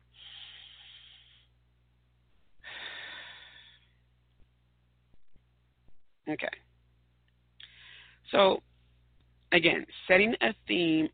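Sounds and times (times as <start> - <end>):
deep breaths during a guided breathing pause: 0.0 - 1.6, 2.5 - 4.1, 7.6 - 8.3
speech: 6.3 - 6.7, 8.3 - 8.7, 9.5 - 11.1.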